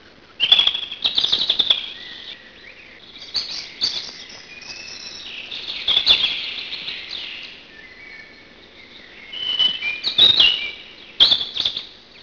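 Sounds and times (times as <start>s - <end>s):
European robin singing: 0.0s - 12.2s.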